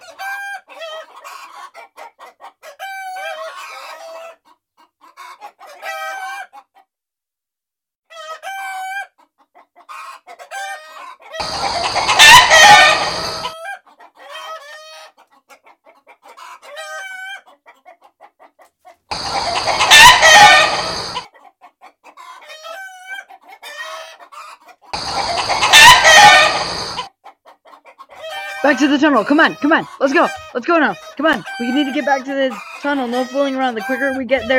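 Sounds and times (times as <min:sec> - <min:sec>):
chickens clucking: 0:00.0 - 0:06.8, 0:08.1 - 0:34.5
loud raspy crowing: 0:11.4 - 0:13.5, 0:19.1 - 0:21.2, 0:25.0 - 0:27.1, 0:31.5 - 0:32.1
speech: 0:28.8 - 0:34.5.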